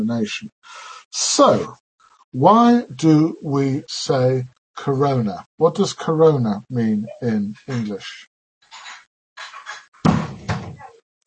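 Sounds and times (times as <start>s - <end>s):
speech: 0.0s - 8.3s
door slamming shut with a heavy booming thud: 10.0s - 11.0s.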